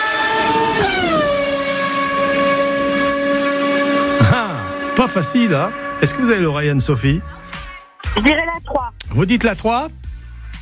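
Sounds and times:
Ferrari sports car engine screaming at high revs: 0.0s - 7.8s
speech: 5.0s - 7.5s, 8.1s - 10.0s.

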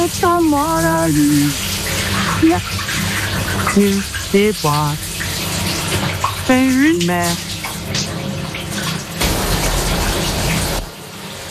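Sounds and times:
speech: 0.0s - 3.0s, 3.6s - 5.1s, 6.5s - 8.1s
shower water spraying while someone rinses off: 0.0s - 11.5s.

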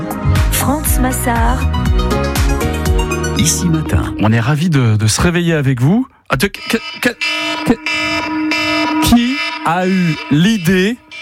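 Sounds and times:
speech: 0.6s - 11.0s
alarm clock ringing with an electronic buzz: 6.4s - 11.2s.

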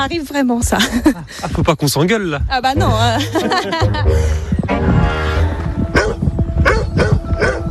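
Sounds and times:
speech: 0.0s - 5.3s
laughter: 2.9s - 4.5s
dog barking: 5.9s - 7.6s.

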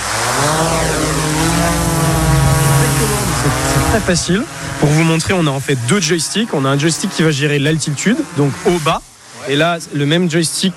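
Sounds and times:
drone propellers whirring as it takes off: 0.0s - 7.2s
speech: 4.0s - 10.7s.

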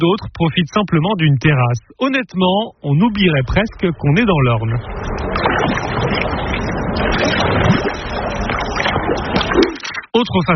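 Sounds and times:
speech: 0.0s - 5.8s, 10.2s - 10.5s
tour boat engine rumble on a lake: 0.0s - 9.8s
water wash from a boat on a lake: 2.9s - 10.1s
wind buffeting the microphone: 3.3s - 9.6s.

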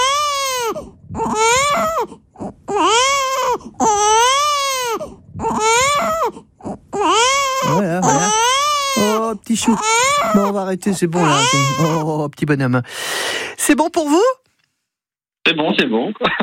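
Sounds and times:
baby crying: 0.0s - 12.2s
speech: 9.6s - 14.4s, 15.4s - 16.4s.

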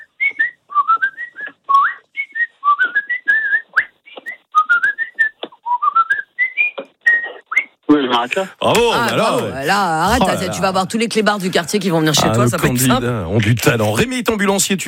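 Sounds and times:
person whistling a high bright soprano melody: 0.0s - 7.8s
speech: 8.1s - 14.8s
laughter: 8.6s - 12.9s.

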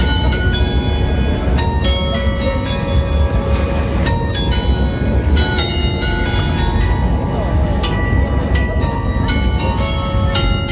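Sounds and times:
belfry carillon bells on a square in Charleville France playing a patriotic march: 0.0s - 10.7s
constant rumbling outdoor background: 0.0s - 10.7s.

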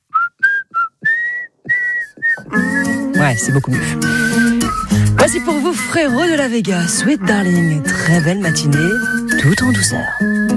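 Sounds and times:
person whistling a short high-pitched tune: 0.0s - 10.5s
speech: 2.5s - 4.4s, 5.2s - 10.4s
faint breath sounds: 3.8s - 5.2s.

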